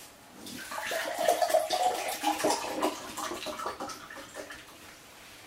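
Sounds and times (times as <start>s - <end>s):
beer pouring into a metal pot: 0.6s - 4.7s.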